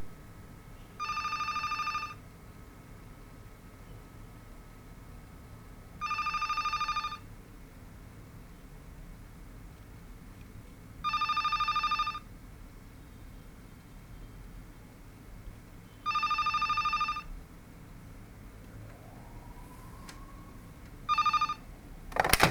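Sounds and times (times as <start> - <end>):
phone ringing: 1.0 - 2.2, 6.0 - 7.3, 11.0 - 12.3, 16.1 - 17.4, 21.0 - 22.4.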